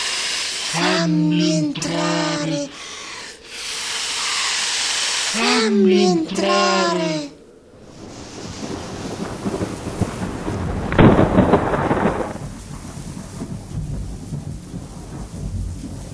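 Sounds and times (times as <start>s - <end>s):
steady rain hissing during a rainstorm: 0.0s - 16.1s
speech: 0.7s - 2.8s
thunder rolling during a rainstorm: 7.7s - 16.1s.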